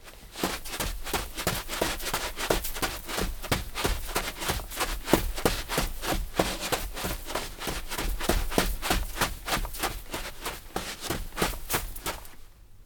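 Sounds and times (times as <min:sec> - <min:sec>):
sneaker footsteps running on sand: 0:00.0 - 0:12.4.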